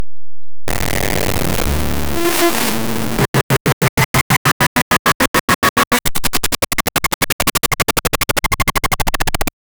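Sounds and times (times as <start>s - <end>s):
ruined toy glitch: 0.7s - 9.5s.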